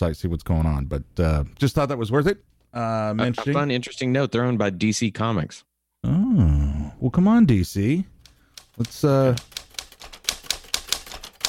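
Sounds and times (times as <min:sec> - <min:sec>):
speech: 0:00.0 - 0:08.1, 0:08.8 - 0:09.6
typewriter keystrokes clacking: 0:08.2 - 0:11.4.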